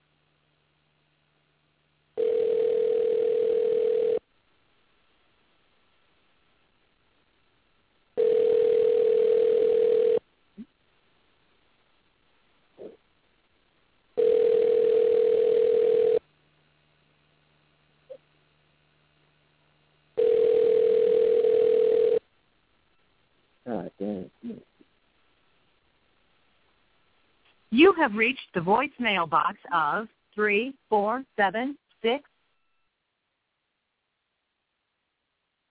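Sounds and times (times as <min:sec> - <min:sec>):
telephone ringing on the line during a callback: 0:02.2 - 0:04.2, 0:08.2 - 0:10.2, 0:14.2 - 0:16.2, 0:20.2 - 0:22.2
speech: 0:28.0 - 0:32.3.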